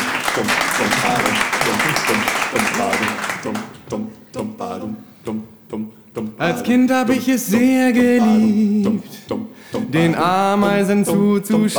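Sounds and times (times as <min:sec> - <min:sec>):
crowd applause: 0:00.0 - 0:04.4
laughter: 0:00.0 - 0:11.7
speech: 0:02.1 - 0:11.7.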